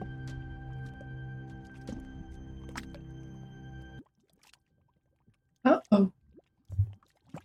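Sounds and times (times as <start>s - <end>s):
bubbling liquid gurgling and popping: 4.0s - 7.4s
speech: 6.0s - 6.2s.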